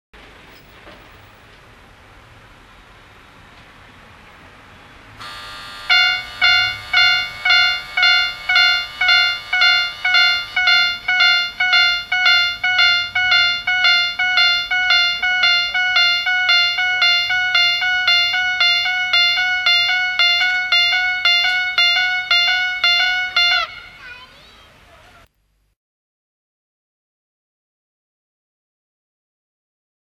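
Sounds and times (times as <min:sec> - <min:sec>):
railway crossing bell: 0:05.2 - 0:24.2.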